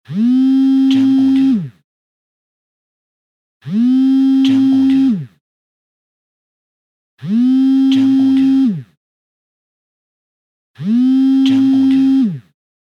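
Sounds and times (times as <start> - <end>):
phone vibrating: 0.1 - 1.8, 3.6 - 5.4, 7.2 - 9.0, 10.8 - 12.6.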